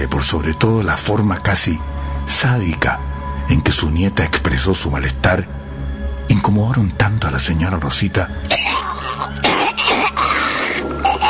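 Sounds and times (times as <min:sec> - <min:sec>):
speech: 0:00.0 - 0:05.6, 0:06.3 - 0:09.5
old woman coughing and choking: 0:08.5 - 0:11.2.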